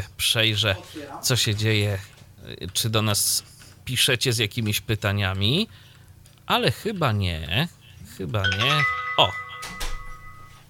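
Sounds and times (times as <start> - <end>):
speech: 0.0 - 5.9, 6.5 - 9.8
smart door camera notification chime: 8.4 - 10.6.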